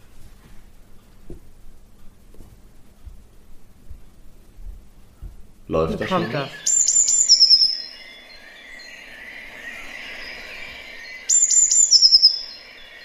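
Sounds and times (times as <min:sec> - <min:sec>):
speech: 0:05.7 - 0:06.7
Eurasian Blue Tit song played as a recording: 0:05.8 - 0:13.0.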